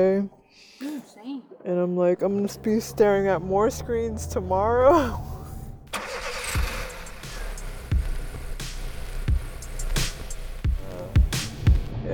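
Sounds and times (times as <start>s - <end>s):
speech: 0.0s - 5.3s
steady low engine rumble inside a running car: 2.3s - 11.5s.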